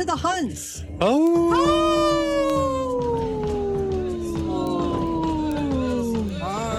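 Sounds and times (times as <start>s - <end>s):
speech: 0.0s - 1.8s
person howling like a wolf: 1.4s - 6.6s.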